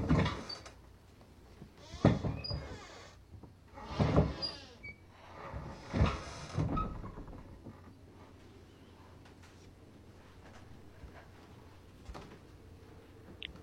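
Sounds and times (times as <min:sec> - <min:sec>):
door creaking and thudding: 0:00.0 - 0:00.8, 0:01.7 - 0:07.9.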